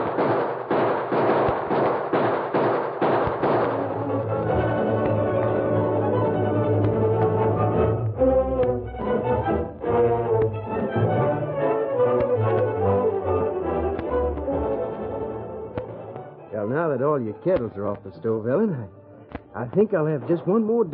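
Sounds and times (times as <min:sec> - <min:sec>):
rapid gunshots in a shootout: 0:00.0 - 0:05.6
dramatic orchestral music: 0:03.4 - 0:20.9
speech: 0:17.2 - 0:19.0, 0:19.6 - 0:20.9.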